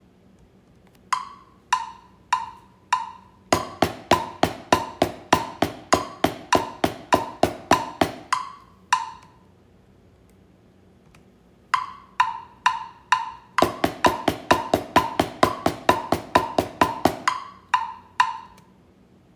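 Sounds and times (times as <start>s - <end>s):
drum double stroke roll: 1.1s - 9.2s, 11.7s - 18.6s.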